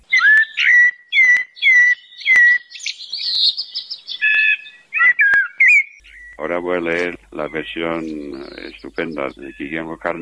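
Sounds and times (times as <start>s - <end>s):
blackbird singing fluty whistled phrases: 0.0s - 10.1s
speech: 6.5s - 10.1s.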